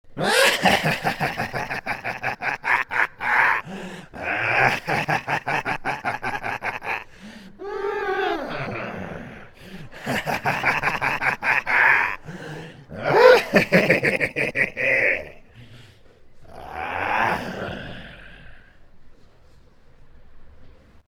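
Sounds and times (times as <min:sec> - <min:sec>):
person laughing: 0:00.2 - 0:15.5.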